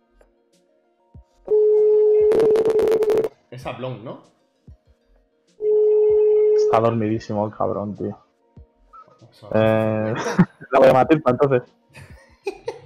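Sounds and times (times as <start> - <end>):
phone ringback tone over speakerphone: 1.5 - 3.3, 5.6 - 6.8
speech: 3.6 - 4.4, 6.8 - 8.2, 9.4 - 11.8
laughter: 9.6 - 11.2, 12.0 - 12.8.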